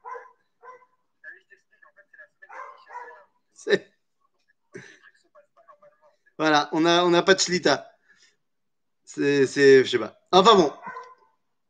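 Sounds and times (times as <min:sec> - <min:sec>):
dog barking next door: 0:00.0 - 0:01.0, 0:02.5 - 0:03.4, 0:10.8 - 0:11.4
speech: 0:03.6 - 0:03.9, 0:06.4 - 0:07.9, 0:09.2 - 0:10.8.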